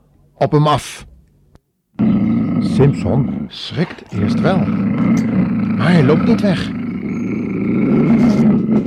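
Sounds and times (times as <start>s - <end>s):
speech: 0.4s - 1.1s, 2.8s - 6.8s, 7.6s - 8.8s
lion roaring: 2.0s - 8.8s.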